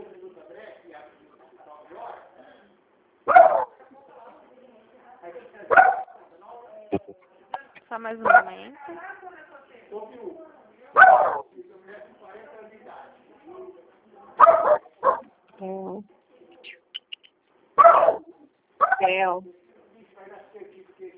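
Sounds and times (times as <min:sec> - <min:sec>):
small dog barking: 0:03.3 - 0:03.8, 0:05.7 - 0:06.2, 0:11.0 - 0:11.4, 0:14.4 - 0:15.3, 0:17.8 - 0:19.1
speech: 0:08.0 - 0:09.3, 0:09.9 - 0:11.4, 0:19.2 - 0:19.6.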